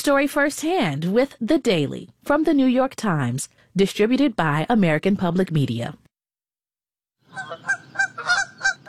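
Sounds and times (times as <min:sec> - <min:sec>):
speech: 0:00.0 - 0:06.0
goose honking: 0:07.3 - 0:08.8.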